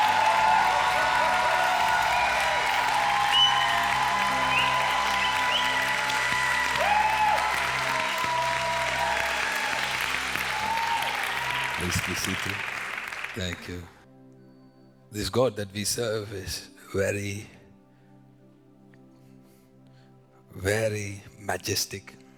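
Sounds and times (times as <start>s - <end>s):
faint cheers and voices: 0.0s - 13.6s
large crowd applauding in praise: 0.0s - 14.0s
speech: 11.9s - 12.8s, 13.4s - 14.0s, 15.1s - 17.6s, 20.6s - 22.2s.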